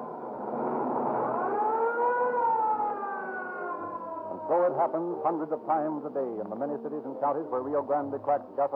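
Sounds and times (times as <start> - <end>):
low rumble of traffic: 0.0 - 8.7
ambulance siren wailing: 0.8 - 4.8
speech: 4.6 - 8.7.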